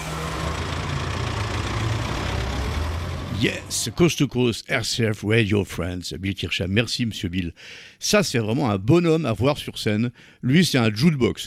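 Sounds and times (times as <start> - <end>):
bus engine idling: 0.0 - 4.4
speech: 3.4 - 11.4.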